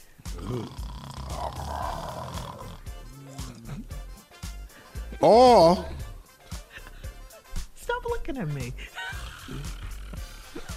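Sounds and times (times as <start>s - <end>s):
voice imitating loud rumbling snoring: 0.3s - 4.0s, 5.2s - 6.0s, 9.1s - 10.7s
speech: 5.2s - 5.9s, 8.3s - 8.9s.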